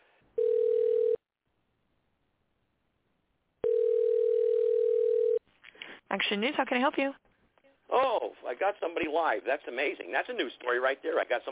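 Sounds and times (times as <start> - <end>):
telephone ringing tones while calling a newsroom number: 0.4 - 1.2, 3.6 - 5.4
speech: 6.2 - 7.3, 7.9 - 11.5.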